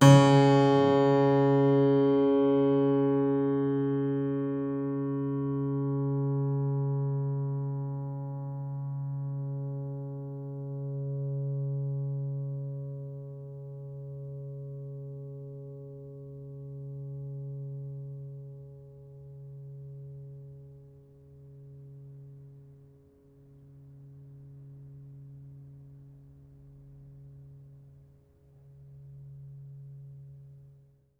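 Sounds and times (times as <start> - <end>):
plucked string pad: 0.0 - 4.3
piano: 0.0 - 27.3.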